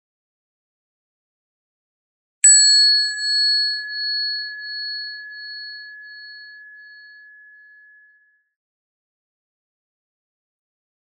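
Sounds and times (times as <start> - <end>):
meditation bell ringing to end a meditation session: 2.4 - 8.3.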